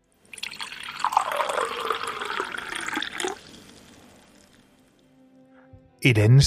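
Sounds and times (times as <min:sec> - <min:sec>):
water flowing: 0:00.3 - 0:04.7
speech: 0:06.0 - 0:06.4.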